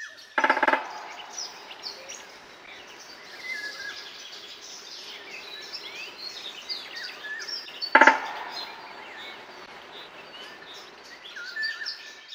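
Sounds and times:
brief woodpecker call: 0:00.0 - 0:12.3
woodpecker drumming: 0:00.4 - 0:11.9.

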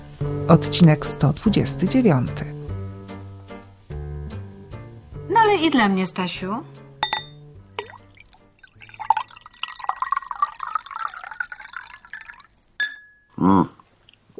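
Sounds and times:
speech: 0:00.5 - 0:02.6, 0:05.6 - 0:06.8, 0:13.4 - 0:13.8
glass clinking: 0:07.0 - 0:13.4
water pouring into a glass: 0:07.6 - 0:12.8.

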